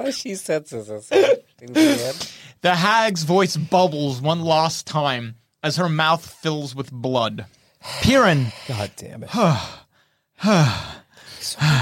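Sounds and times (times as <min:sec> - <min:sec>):
speech: 0:00.0 - 0:09.8, 0:10.4 - 0:11.8
person breathing heavily in panic after a struggle: 0:07.7 - 0:11.8.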